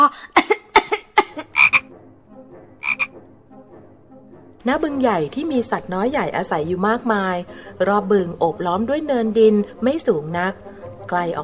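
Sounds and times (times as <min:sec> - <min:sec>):
frog croaking: 0:01.5 - 0:01.9, 0:02.8 - 0:03.2
speech: 0:04.6 - 0:11.4.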